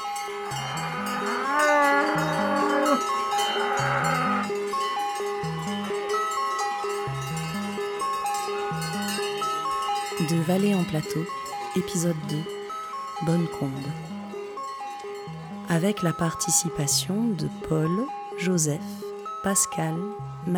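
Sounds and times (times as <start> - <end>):
cowbells clanging on a moving herd of cows: 0.0 - 13.9
speech: 10.3 - 12.6, 13.2 - 14.2, 15.7 - 20.5.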